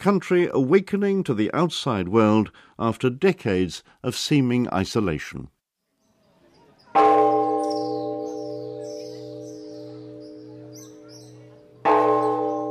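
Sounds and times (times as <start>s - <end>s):
speech: 0.0s - 5.6s
birds chirping: 5.8s - 12.7s
large temple prayer bell struck at a pagoda: 6.9s - 12.7s.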